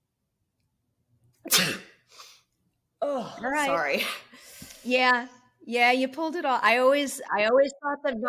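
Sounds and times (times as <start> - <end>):
speech: 1.4 - 1.8, 3.4 - 8.2
person fake sneezing: 1.4 - 2.4.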